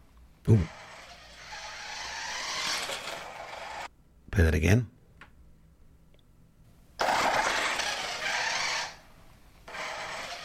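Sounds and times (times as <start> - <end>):
speech: 0.4 - 0.8, 4.4 - 5.0
remote-controlled toy car motor whining: 0.5 - 3.9, 7.0 - 9.0, 9.7 - 10.4.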